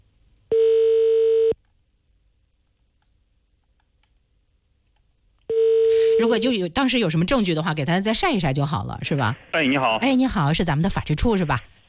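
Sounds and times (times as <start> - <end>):
telephone ringback tone: 0.5 - 1.6, 5.5 - 6.2
speech: 6.2 - 11.8.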